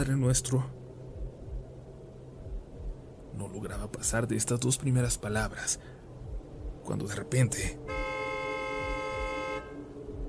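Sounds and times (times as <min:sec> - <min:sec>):
speech: 0:00.0 - 0:00.8, 0:03.4 - 0:06.1, 0:06.8 - 0:07.9
low rumble: 0:00.0 - 0:10.2
taxi car horn honking: 0:07.9 - 0:09.9.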